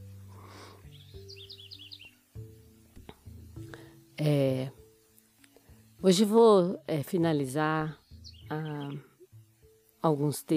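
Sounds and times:
birds singing: 0.8 - 2.3, 7.7 - 9.3
speech: 4.2 - 4.8, 6.0 - 9.1, 10.0 - 10.5.

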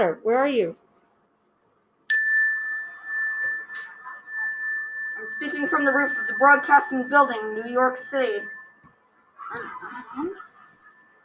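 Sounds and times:
speech: 0.0 - 0.8, 5.4 - 8.6, 9.5 - 10.4
warning bells ringing in New York City: 2.1 - 8.9, 9.5 - 11.2.

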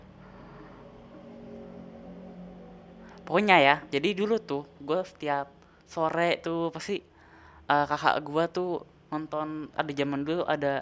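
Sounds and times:
motorcycle engine passing by: 0.0 - 5.2
speech: 3.3 - 7.1, 7.7 - 10.7.

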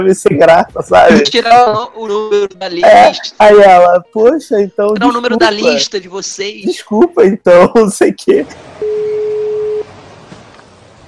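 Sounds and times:
speech: 0.0 - 8.9
laughter: 1.0 - 1.8, 5.0 - 5.8
outgoing phone call ringback tone beep: 8.8 - 9.9.

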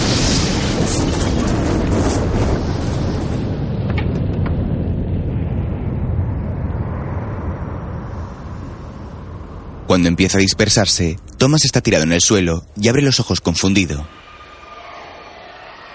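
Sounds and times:
bomb exploding on a stage platform in a plaza: 0.0 - 9.8
speech: 10.0 - 14.2.

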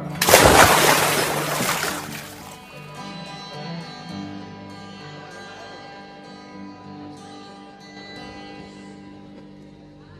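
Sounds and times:
loud water splash: 0.0 - 2.6.

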